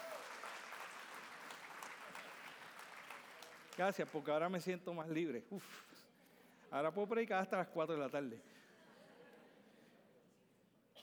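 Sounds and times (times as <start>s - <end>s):
crowd applauding: 0.0s - 4.4s
speech: 3.8s - 6.0s, 6.7s - 8.5s.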